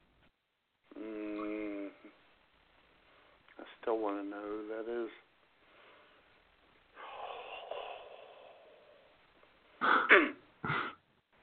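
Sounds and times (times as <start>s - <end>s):
speech: 3.8s - 5.3s
long breathy exhale: 7.0s - 9.1s
short suppressed coughs: 9.8s - 11.0s.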